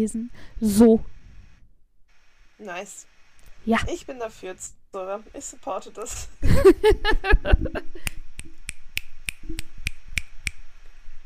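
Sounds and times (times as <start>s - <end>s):
speech: 0.0s - 1.1s, 2.6s - 8.2s
laughter: 6.4s - 8.0s
finger snaps to show support: 8.0s - 10.6s.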